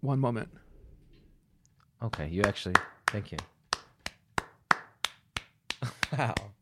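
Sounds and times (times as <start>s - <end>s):
speech: 0.0s - 0.7s, 2.0s - 3.5s, 5.8s - 6.5s
crisp hand claps: 2.1s - 6.5s.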